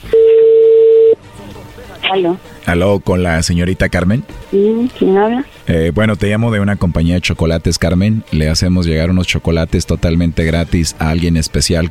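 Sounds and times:
telephone ringback tone as call connects: 0.1 - 1.2
voices on the telephone line: 1.2 - 11.9
speech: 2.1 - 11.9.

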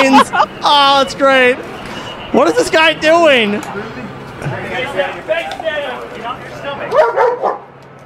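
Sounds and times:
laughter: 0.0 - 1.6, 3.4 - 5.2
speech: 0.0 - 1.7, 2.3 - 7.3
dog barking and yipping excitedly: 6.9 - 7.7.

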